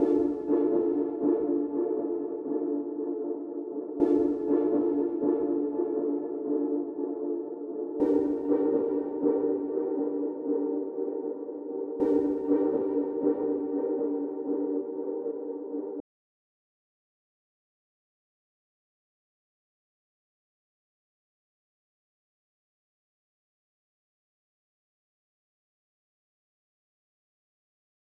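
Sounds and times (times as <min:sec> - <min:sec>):
delayed pad loop in D minor at 120 BPM for trap: 0:00.0 - 0:16.0.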